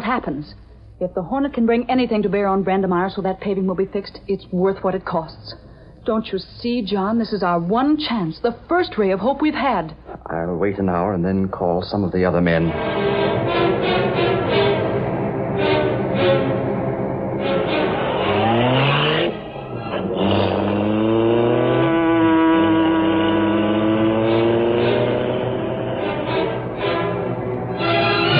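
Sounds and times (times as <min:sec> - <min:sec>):
speech: 0:00.1 - 0:13.1
car engine revving as the vehicle accelerates and drives on: 0:12.7 - 0:28.3.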